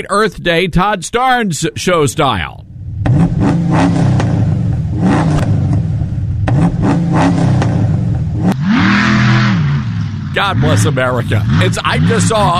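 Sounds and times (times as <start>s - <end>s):
speech: 0.0s - 4.1s, 10.4s - 12.5s
monster truck engine revving in Memphis Tennessee: 2.9s - 12.5s.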